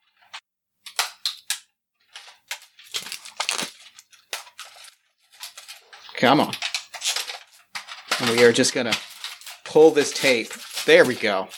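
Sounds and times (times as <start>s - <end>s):
smashed plastic case being cracked and pried open: 2.2s - 11.5s
speech: 6.2s - 6.7s, 8.2s - 9.1s, 9.7s - 11.5s.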